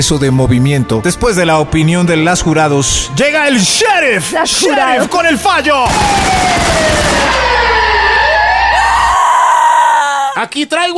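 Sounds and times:
speech: 0:00.0 - 0:07.9, 0:10.4 - 0:10.9
police car siren wailing: 0:04.4 - 0:10.2.

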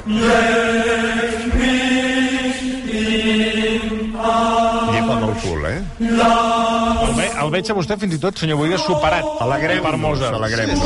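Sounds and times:
speech: 0:00.0 - 0:01.8, 0:05.1 - 0:10.8
single choral voice singing a canon: 0:00.0 - 0:10.8.

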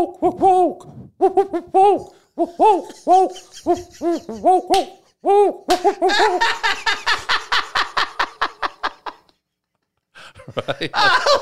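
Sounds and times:
human voice imitating an owl hooting: 0:00.0 - 0:06.2
speech: 0:00.0 - 0:07.3, 0:10.5 - 0:11.4
laughter: 0:02.4 - 0:04.8, 0:05.8 - 0:09.4, 0:10.2 - 0:11.4.

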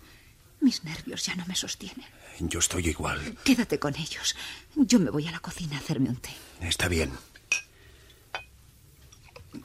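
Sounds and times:
speech: 0:00.6 - 0:07.3
glass clinking as brandy is served: 0:07.5 - 0:09.6.

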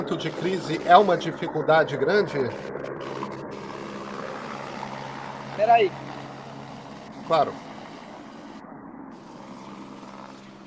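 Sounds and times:
speech: 0:00.0 - 0:03.2, 0:05.6 - 0:06.1, 0:07.3 - 0:07.6
helicopter rotor rumble as it leaves after dropping off a patient: 0:00.0 - 0:10.6.

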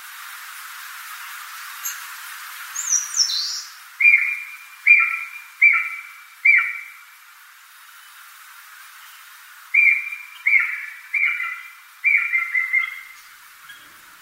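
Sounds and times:
Japanese green woodpecker whistling on Mount Takao, Tokyo, Japan: 0:02.8 - 0:07.0, 0:09.7 - 0:13.9.

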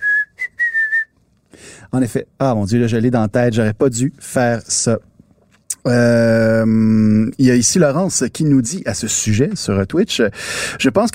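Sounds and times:
person whistling a short melodic phrase: 0:00.0 - 0:01.1
speech: 0:01.8 - 0:05.1, 0:05.8 - 0:11.1.

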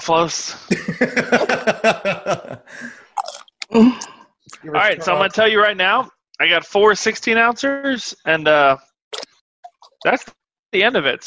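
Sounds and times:
speech: 0:00.0 - 0:03.0, 0:03.7 - 0:09.3, 0:10.0 - 0:11.2
laughter: 0:00.7 - 0:03.0, 0:04.8 - 0:05.6
person crunching tortilla chips: 0:03.2 - 0:04.1.

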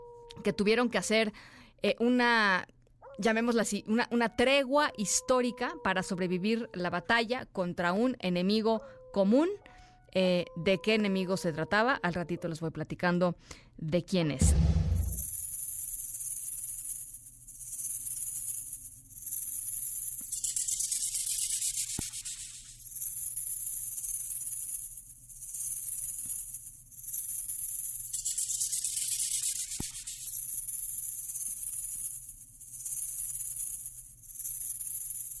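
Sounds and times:
speech: 0:00.4 - 0:14.8
rattlesnake rattling: 0:15.0 - 0:35.3.

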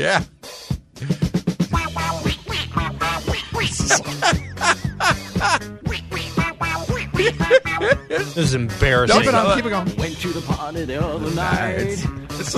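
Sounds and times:
speech: 0:00.0 - 0:00.4, 0:01.0 - 0:01.2, 0:03.8 - 0:06.1, 0:07.2 - 0:12.5
disco music with thumping beat and steady bass: 0:00.0 - 0:12.5
squawky duck-like voice quacking in a disco song: 0:01.7 - 0:08.3
laughter: 0:01.8 - 0:05.7, 0:07.0 - 0:09.8.

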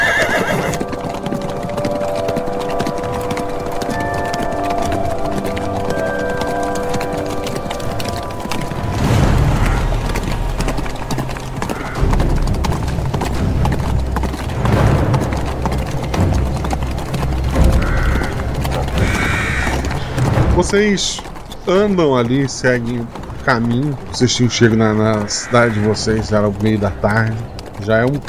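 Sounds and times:
horse whinnying: 0:00.0 - 0:12.3, 0:17.6 - 0:20.3, 0:24.3 - 0:27.0
horse hooves clip-clopping: 0:00.0 - 0:28.2
speech: 0:20.7 - 0:28.2.

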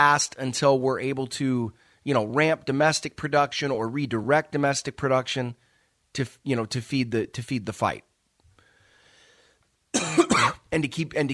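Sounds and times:
speech: 0:00.0 - 0:08.1, 0:10.0 - 0:11.3
person with a cold coughing: 0:10.0 - 0:10.7.

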